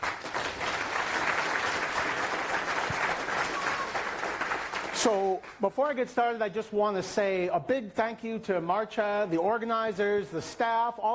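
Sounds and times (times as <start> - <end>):
audience applauding as a speaker is introduced: 0.0 - 5.6
speech: 5.0 - 11.1.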